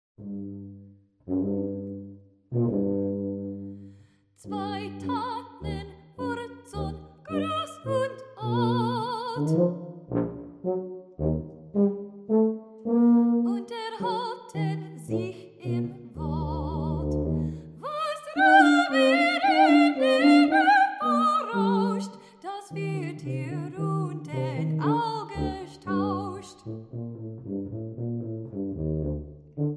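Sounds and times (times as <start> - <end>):
tuba playing: 0.2 - 3.8, 4.4 - 17.6, 18.4 - 22.0, 22.8 - 29.7
soprano voice singing: 4.4 - 9.6, 13.5 - 17.2, 17.8 - 26.7.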